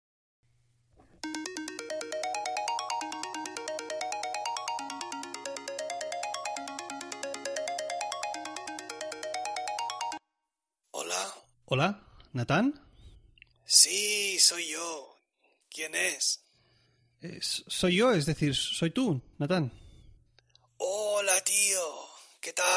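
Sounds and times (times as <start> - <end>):
melodic electronic phone ringtone: 1.2 - 10.3
speech: 11.7 - 12.8, 13.7 - 15.1, 15.7 - 16.4, 17.2 - 19.8, 21.4 - 22.7.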